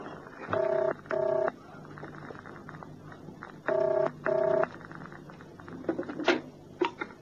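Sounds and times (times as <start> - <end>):
telephone ringing tone heard down the line: 0.5 - 1.6, 3.6 - 4.7.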